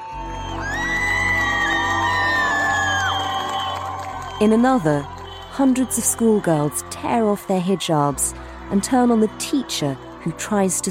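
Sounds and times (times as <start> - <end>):
large crowd cheering loudly outdoors in the middle of a street: 0.0 - 8.3
speech: 4.4 - 10.9.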